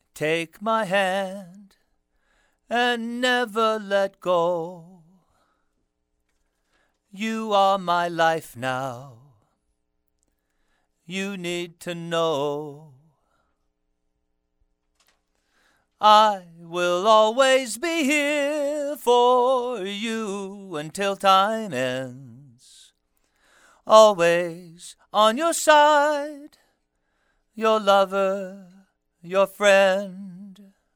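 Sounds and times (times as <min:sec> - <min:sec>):
man singing: 0:00.0 - 0:01.8, 0:02.7 - 0:05.2, 0:07.1 - 0:09.4, 0:11.1 - 0:13.1, 0:16.0 - 0:22.9, 0:23.8 - 0:26.6, 0:27.6 - 0:30.7.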